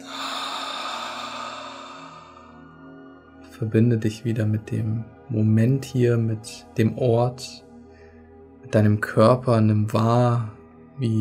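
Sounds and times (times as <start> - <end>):
deep breath during a guided chakra meditation: 0.0 - 3.4
speech: 3.6 - 7.6, 8.7 - 11.2.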